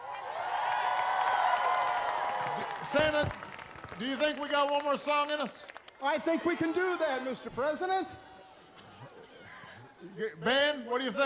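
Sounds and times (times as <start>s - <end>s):
audience applause and cheering at a holiday concert: 0.0s - 7.7s
speech: 2.8s - 8.2s, 10.1s - 11.2s.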